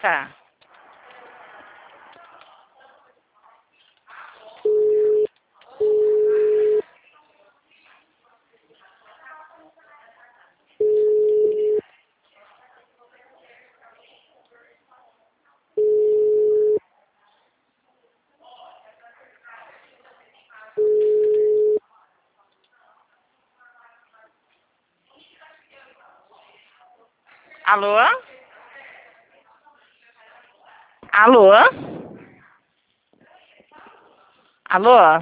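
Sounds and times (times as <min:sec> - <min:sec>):
speech: 0:00.0 - 0:00.4, 0:27.8 - 0:28.3, 0:34.8 - 0:35.2
faint murmur: 0:00.0 - 0:35.2
telephone line beeps while a call is being transferred: 0:04.7 - 0:06.8, 0:10.8 - 0:11.8, 0:15.8 - 0:16.8, 0:20.8 - 0:21.8.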